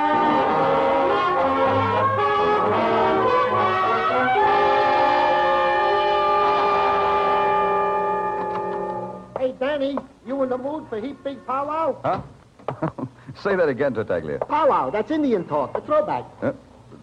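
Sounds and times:
train horn in long loud chord-like blasts: 0:00.0 - 0:09.3
speech: 0:10.6 - 0:16.6.

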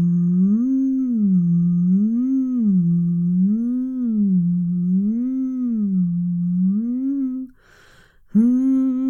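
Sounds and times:
person humming up and down as a vocal warm-up: 0:00.0 - 0:07.6, 0:08.3 - 0:09.0
quick breath: 0:07.5 - 0:08.3.

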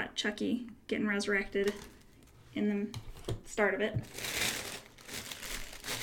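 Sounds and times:
speech: 0:00.2 - 0:02.0, 0:02.6 - 0:04.4
paper crinkling as notebook pages and cover are handled: 0:01.6 - 0:02.3, 0:04.0 - 0:06.0.

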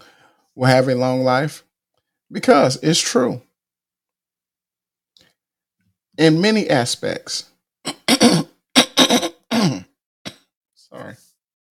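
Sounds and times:
speech: 0:00.6 - 0:01.7, 0:02.3 - 0:03.5, 0:06.2 - 0:08.0
person coughing: 0:07.9 - 0:10.4
throat clearing: 0:07.9 - 0:10.5.

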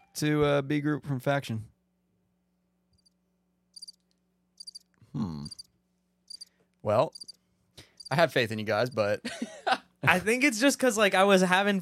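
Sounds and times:
speech: 0:00.2 - 0:01.7, 0:06.8 - 0:07.3, 0:08.1 - 0:11.8
cricket chirping in short rapid pulsed trills: 0:03.0 - 0:05.7, 0:06.3 - 0:06.5, 0:07.1 - 0:07.4.

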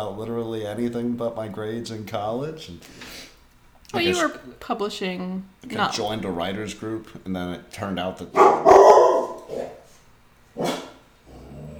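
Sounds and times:
speech: 0:00.0 - 0:03.3, 0:03.9 - 0:08.8, 0:09.5 - 0:09.8, 0:10.6 - 0:10.8
dog barking at passerby: 0:08.3 - 0:09.9, 0:10.6 - 0:11.1
low growly tail of dog bark: 0:08.3 - 0:09.9, 0:10.6 - 0:11.7.

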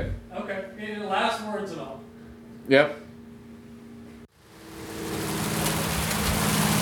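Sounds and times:
speech: 0:00.0 - 0:03.0
hail drumming down outside a studio: 0:04.7 - 0:06.8.

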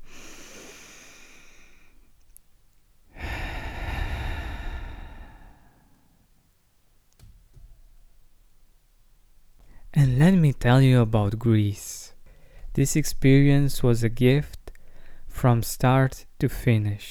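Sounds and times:
slow deep breath in and out: 0:00.0 - 0:02.1, 0:03.1 - 0:06.4, 0:12.2 - 0:12.7, 0:14.7 - 0:15.4
speech: 0:10.0 - 0:12.1, 0:12.8 - 0:14.6, 0:15.4 - 0:17.0.

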